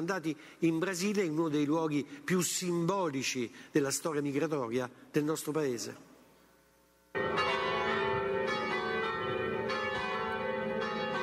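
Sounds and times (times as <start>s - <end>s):
speech: 0.0s - 6.1s
church bells ringing from a bell tower: 7.2s - 11.2s.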